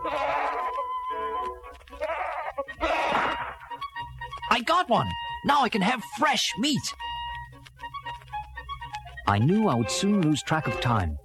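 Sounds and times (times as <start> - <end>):
wild goats on an island bleating: 0.0 - 3.8
speech: 4.6 - 7.0, 9.3 - 11.2.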